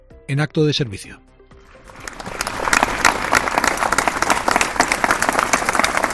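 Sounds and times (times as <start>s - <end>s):
speech: 0.3s - 1.3s
crowd applauding: 1.7s - 6.1s.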